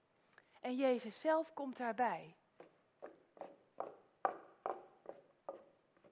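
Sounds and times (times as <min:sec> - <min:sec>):
speech: 0:00.6 - 0:02.4
hard wooden clogs walking on a path: 0:02.6 - 0:06.1.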